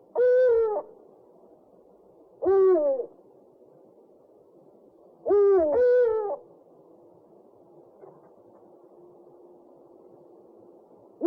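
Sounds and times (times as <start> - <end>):
owl giving a two-part hoot: 0.0 - 1.0, 2.4 - 3.2, 5.2 - 6.5
faint background hiss: 0.0 - 11.2.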